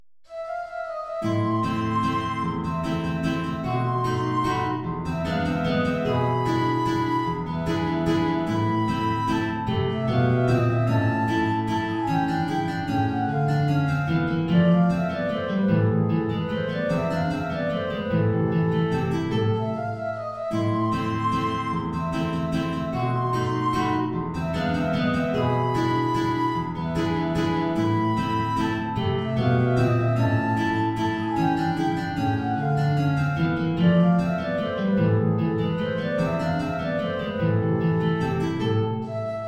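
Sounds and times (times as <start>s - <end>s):
transverse flute: 0.3s - 39.4s
two guitars: 1.2s - 39.4s.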